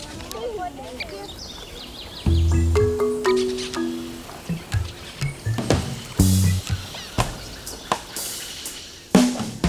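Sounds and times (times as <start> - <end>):
many wetland birds calling: 0.9 - 9.4
low honking wetland bird calls: 2.3 - 8.8.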